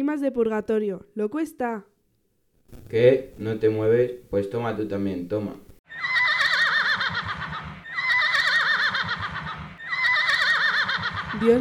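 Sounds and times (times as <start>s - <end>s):
speech: 0.0s - 1.9s, 2.7s - 6.1s, 11.4s - 11.5s
horse neighing: 5.9s - 11.5s.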